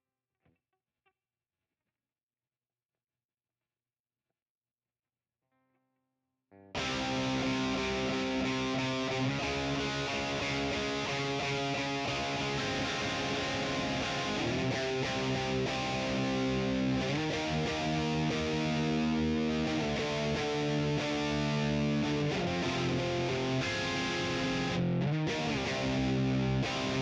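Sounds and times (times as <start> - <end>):
guitar: 6.6 - 27.0.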